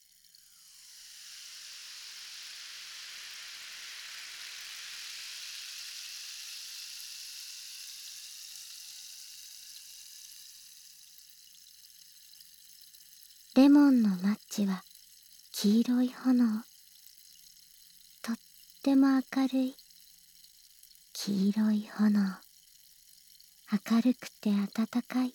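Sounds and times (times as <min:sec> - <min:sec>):
carbonated drink fizzing: 0:00.4 - 0:13.4
speech: 0:13.6 - 0:14.9, 0:15.6 - 0:16.7, 0:18.8 - 0:19.8, 0:21.2 - 0:22.4, 0:23.7 - 0:25.3.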